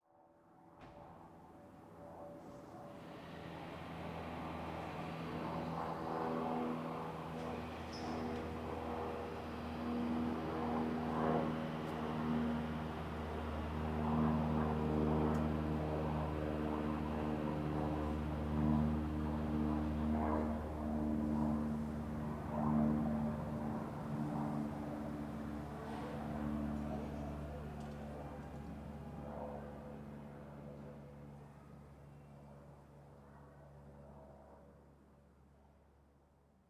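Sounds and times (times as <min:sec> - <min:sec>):
small propeller plane: 0:00.0 - 0:36.6.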